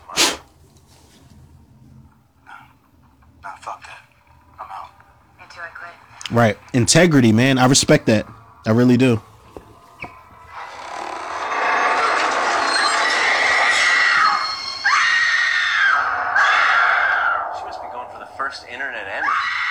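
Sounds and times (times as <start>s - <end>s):
speech: 6.3s - 9.3s
loud shrill scream: 10.5s - 19.6s.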